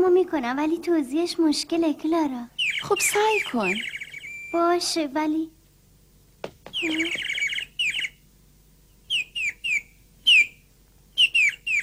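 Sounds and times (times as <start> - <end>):
speech: 0.0 - 5.6, 6.8 - 7.3
caged pet bird chirping: 2.5 - 4.8, 6.7 - 11.8.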